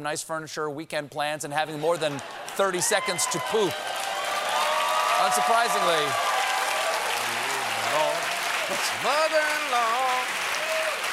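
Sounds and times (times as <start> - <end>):
speech: 0.0 - 4.1, 5.2 - 6.3, 8.7 - 10.3
audience of parents clapping: 1.9 - 11.1.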